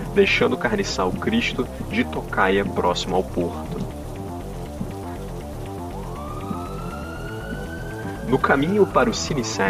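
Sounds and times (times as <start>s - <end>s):
dense steady rain-like patter: 0.0s - 9.6s
low rhythmic sound: 0.0s - 9.6s
speech: 0.2s - 4.0s, 8.3s - 9.6s
distant police and emergency sirens echoing: 3.6s - 9.6s.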